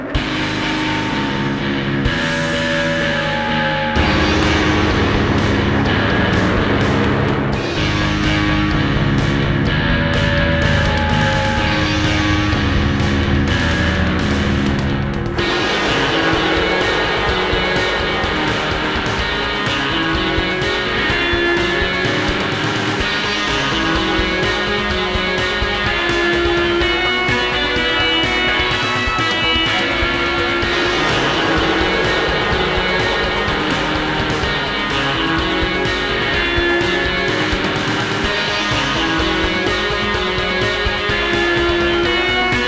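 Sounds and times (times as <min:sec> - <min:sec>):
slow guitar playing: 0:00.1 - 0:42.6.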